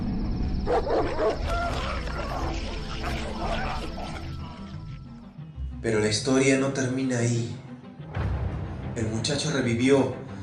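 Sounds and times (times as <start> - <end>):
pack of dogs barking and snarling aggressively: 0.0 - 5.2
speech: 0.7 - 1.4, 5.8 - 7.6, 9.0 - 10.2.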